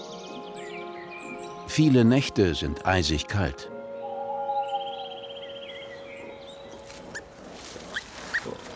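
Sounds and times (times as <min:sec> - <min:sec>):
speech: 0:01.7 - 0:03.7
newborn wild boar piglets squeaking and squealing in a woodland nest: 0:06.2 - 0:08.7.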